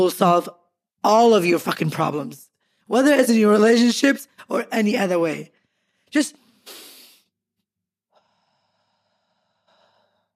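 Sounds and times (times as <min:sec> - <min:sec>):
speech: 0:00.0 - 0:06.8
deep breath in through the nose and out through the mouth: 0:05.5 - 0:07.4, 0:08.1 - 0:10.3.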